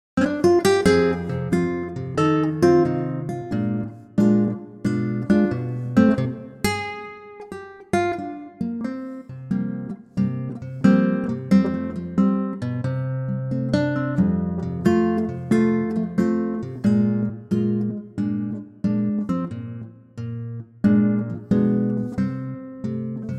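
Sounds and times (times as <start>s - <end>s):
acoustic guitar in F: 0.2s - 23.3s.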